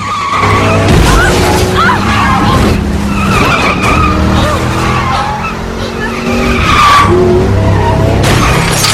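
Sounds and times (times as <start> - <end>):
loud continuous tire squeal and skidding on a road: 0.0 - 8.9
roaring engines of a large 4x4 and a car: 0.0 - 8.9.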